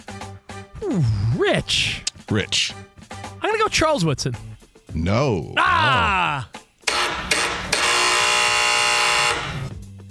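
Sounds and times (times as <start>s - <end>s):
speech: 0.9s - 2.9s, 3.7s - 6.6s
game show wrong-answer buzzer: 6.9s - 9.7s.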